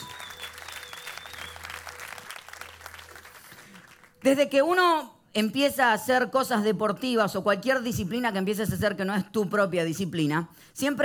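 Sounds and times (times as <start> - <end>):
audience applauding: 0.0 - 4.2
speech: 4.2 - 11.0.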